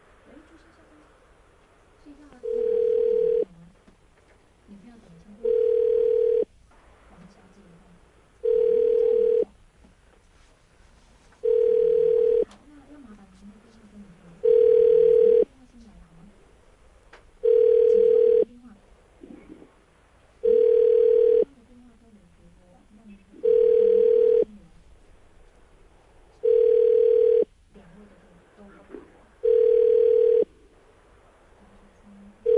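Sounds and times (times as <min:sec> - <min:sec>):
phone ringback tone: 0:02.4 - 0:03.5, 0:05.4 - 0:06.5, 0:08.4 - 0:09.4, 0:11.4 - 0:12.4, 0:14.4 - 0:15.4, 0:17.4 - 0:18.5, 0:20.4 - 0:21.4, 0:23.4 - 0:24.5, 0:26.4 - 0:27.5, 0:29.4 - 0:30.5.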